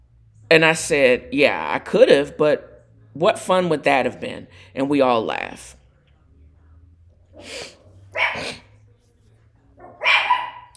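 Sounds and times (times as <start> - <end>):
low hum: 0.0 - 10.7
speech: 0.5 - 5.8, 7.4 - 8.6
dog barking: 8.1 - 8.7, 9.8 - 10.7.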